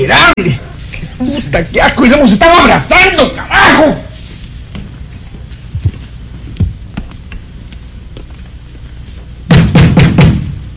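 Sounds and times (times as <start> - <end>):
speech: 0.1 - 0.6, 1.2 - 4.0
heavy pounding on a door: 9.5 - 10.6.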